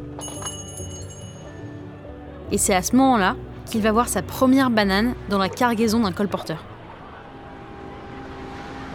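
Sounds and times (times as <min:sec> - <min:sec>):
speech: 0:02.5 - 0:06.7
boat engine droning at a busy port: 0:04.1 - 0:08.9.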